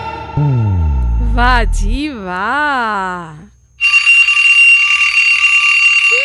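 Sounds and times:
faint lower tone: 0:00.4 - 0:02.1
speech: 0:01.4 - 0:03.4
alarm clock ringing with high metallic trill: 0:03.9 - 0:06.1.

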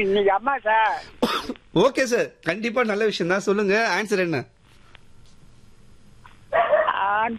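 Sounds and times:
speech: 0:00.0 - 0:04.6
dog barking: 0:06.5 - 0:07.0.

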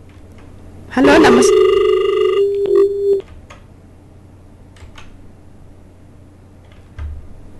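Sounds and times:
speech: 0:01.0 - 0:01.8
electronic telephone ring of an incoming call to a radio call-in show: 0:01.0 - 0:03.2.

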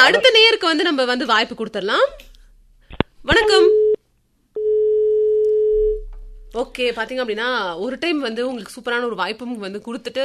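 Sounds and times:
speech: 0:00.1 - 0:02.3, 0:03.2 - 0:03.8, 0:06.5 - 0:10.2
telephone tone after a call line is cut: 0:03.5 - 0:04.0, 0:04.6 - 0:06.0.

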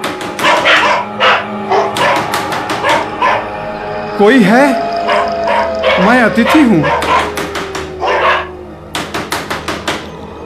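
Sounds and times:
two dogs barking: 0:00.1 - 0:03.6, 0:04.7 - 0:09.2
speech: 0:04.2 - 0:04.8, 0:06.0 - 0:07.0.

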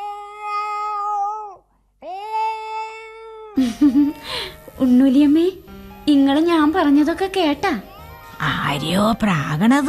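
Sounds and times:
pregnant cat meowing: 0:00.0 - 0:01.6
speech: 0:03.6 - 0:09.8.

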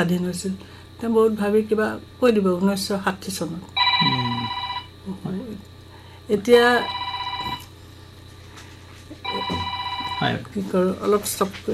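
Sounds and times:
speech: 0:00.0 - 0:05.7, 0:06.3 - 0:07.0, 0:09.4 - 0:11.7
electronic telephone ring tone for an incoming call: 0:03.8 - 0:04.9, 0:06.7 - 0:07.7, 0:09.2 - 0:10.4.

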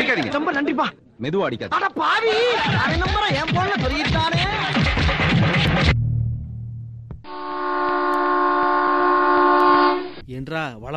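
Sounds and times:
speech: 0:00.1 - 0:04.8, 0:10.3 - 0:10.9
low hum of train: 0:05.9 - 0:10.2
loud sustained train horn: 0:07.3 - 0:10.2.

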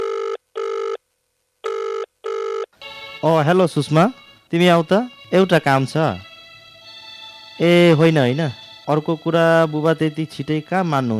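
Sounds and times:
ringback tone of an outgoing telephone call: 0:01.7 - 0:03.4
speech: 0:03.2 - 0:06.3, 0:07.6 - 0:11.1.

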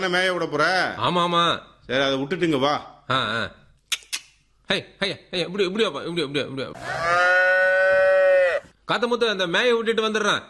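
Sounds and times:
speech: 0:00.0 - 0:03.6, 0:04.7 - 0:07.4, 0:08.9 - 0:10.4
cow mooing: 0:06.8 - 0:08.6.

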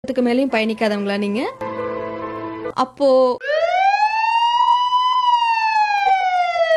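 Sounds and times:
speech: 0:00.0 - 0:01.7, 0:02.7 - 0:03.6
emergency vehicle siren wailing: 0:03.4 - 0:06.7.

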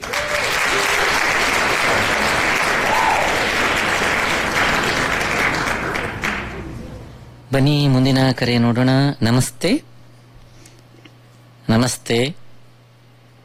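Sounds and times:
crowd applauding: 0:00.0 - 0:07.2
speech: 0:07.6 - 0:09.9, 0:11.7 - 0:12.4.

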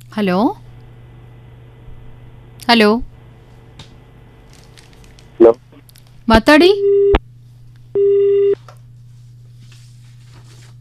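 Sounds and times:
low constant hum: 0:00.0 - 0:10.8
speech: 0:00.2 - 0:00.6, 0:02.6 - 0:03.1, 0:06.3 - 0:07.2
telephone signal announcing an incoming call: 0:08.0 - 0:08.6.

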